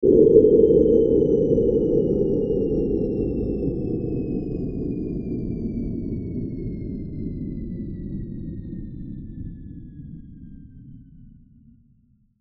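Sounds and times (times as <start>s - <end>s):
long descending power down: 0.0s - 5.3s.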